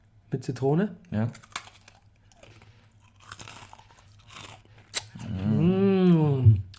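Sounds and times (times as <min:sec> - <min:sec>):
speech: 0:00.3 - 0:01.6
crunching and chewing Russisch Brot letter biscuits: 0:01.1 - 0:05.8.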